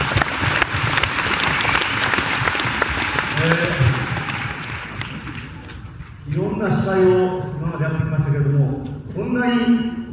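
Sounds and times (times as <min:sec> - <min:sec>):
audience applause at a 1970s Japanese idol-group concert and stage show: 0:00.0 - 0:05.9
speech: 0:06.6 - 0:09.9.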